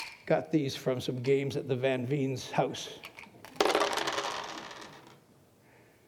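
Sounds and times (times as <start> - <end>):
speech: 0.3 - 3.1
dice clattering across a hard tabletop: 3.0 - 5.2.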